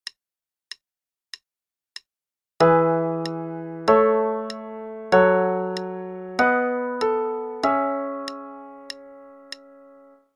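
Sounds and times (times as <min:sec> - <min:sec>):
chord progression in E major: 0:02.6 - 0:10.2.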